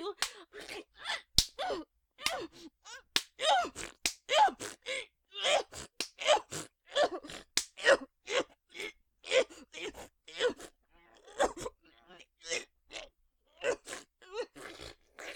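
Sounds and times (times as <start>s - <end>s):
breathy gasps, moans and short vocal sounds: 0.0s - 15.3s
sharp slaps to the face: 1.4s - 1.6s, 7.6s - 7.8s.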